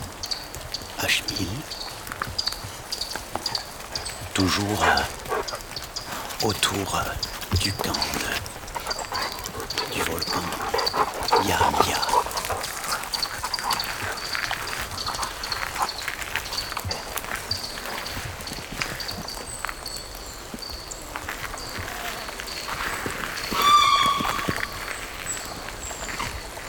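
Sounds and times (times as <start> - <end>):
birds chirping in the distance in a park: 0.0 - 26.6
patter of raindrops in a park: 0.0 - 26.6
speech: 1.0 - 1.9, 4.4 - 5.2, 6.4 - 8.5, 10.0 - 12.2
dogs barking: 3.2 - 17.4
rooster crowing: 23.5 - 24.8.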